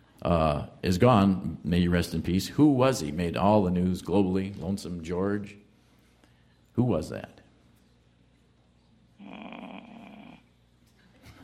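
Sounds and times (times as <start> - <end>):
speech: 0.2 - 5.6, 6.8 - 7.4
person groaning while thinking: 9.2 - 10.4.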